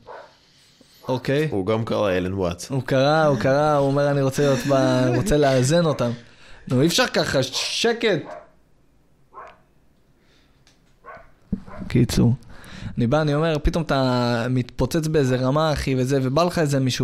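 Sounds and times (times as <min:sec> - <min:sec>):
dog barking: 0:00.0 - 0:00.4, 0:07.5 - 0:08.6, 0:09.3 - 0:09.6, 0:11.0 - 0:12.0
speech: 0:01.1 - 0:08.4, 0:11.9 - 0:17.0
laughter: 0:03.0 - 0:06.3.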